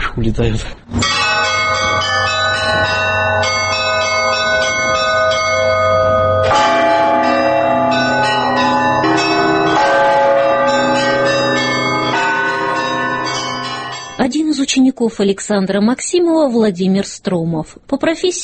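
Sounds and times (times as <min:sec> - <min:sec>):
speech: 0:00.2 - 0:01.9, 0:14.7 - 0:18.4
several church bells ringing in a peal: 0:01.0 - 0:14.4.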